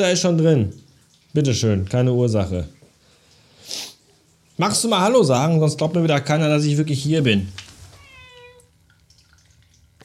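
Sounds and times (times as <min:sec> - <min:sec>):
speech: 0:00.0 - 0:02.8, 0:04.6 - 0:07.6
faint dripping or clinking: 0:00.6 - 0:03.5, 0:07.6 - 0:10.0
single drawn-out cat meow: 0:07.9 - 0:08.8.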